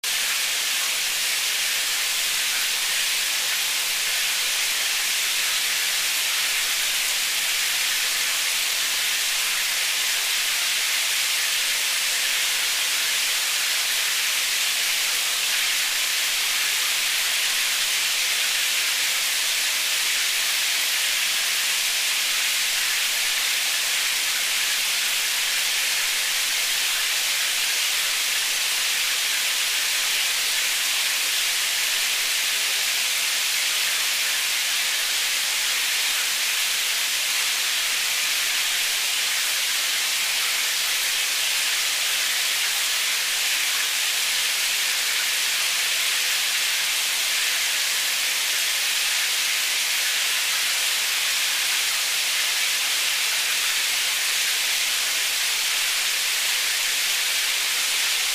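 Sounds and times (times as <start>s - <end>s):
rain: 0.0s - 58.3s.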